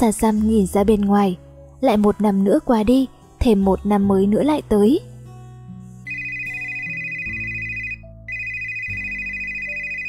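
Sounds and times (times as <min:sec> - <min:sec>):
speech: 0:00.0 - 0:05.1
telephone ringing with electronic ringtone: 0:06.1 - 0:10.0.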